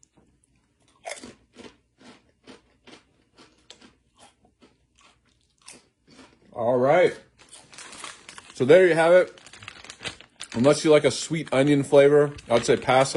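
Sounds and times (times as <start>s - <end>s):
dill-flavored potato chip crunching: 0.8s - 13.1s
speech: 6.6s - 7.3s, 8.6s - 9.4s, 10.6s - 13.1s.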